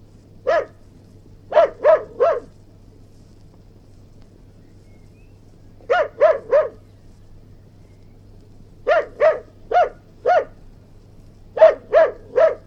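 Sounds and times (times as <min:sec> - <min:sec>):
faint constant low hum: 0:00.0 - 0:12.6
mongrel terrier barking: 0:00.4 - 0:00.8, 0:01.5 - 0:02.5, 0:05.9 - 0:06.8, 0:08.8 - 0:10.6, 0:11.6 - 0:12.6.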